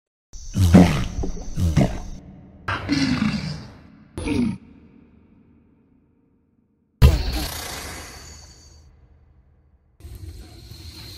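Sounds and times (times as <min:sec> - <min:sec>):
black caiman growling: 0:00.5 - 0:05.0.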